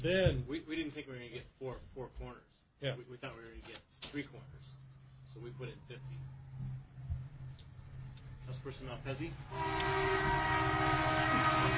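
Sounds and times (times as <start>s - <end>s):
speech: 0.0s - 4.7s, 5.3s - 7.2s, 8.5s - 11.7s
coal train sounding its horn: 9.5s - 11.7s.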